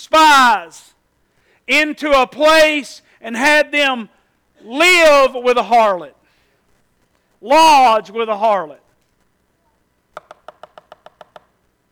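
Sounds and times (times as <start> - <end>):
speech: 0.0 - 0.9, 1.7 - 6.2, 7.4 - 8.8
sharp hollow knocks on a door: 10.2 - 11.5.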